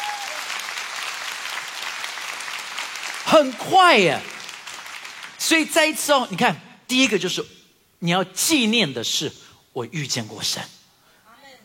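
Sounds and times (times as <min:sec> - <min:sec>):
congregation clapping in sustained applause: 0:00.0 - 0:05.7
speech: 0:03.3 - 0:04.3, 0:05.4 - 0:10.8.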